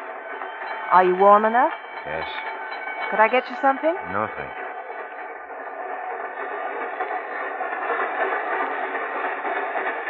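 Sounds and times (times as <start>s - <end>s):
train rolling along the tracks: 0.0s - 10.0s
speech: 0.9s - 2.5s, 3.1s - 4.6s.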